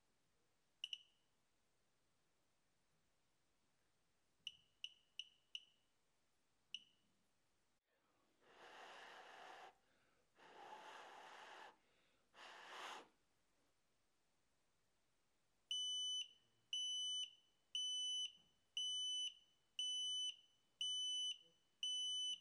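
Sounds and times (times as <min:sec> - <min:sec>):
breathy rushes of noise: 0:08.5 - 0:09.8, 0:10.4 - 0:11.8, 0:12.4 - 0:13.1
CO2 air quality sensor alarm beeping: 0:15.7 - 0:22.3.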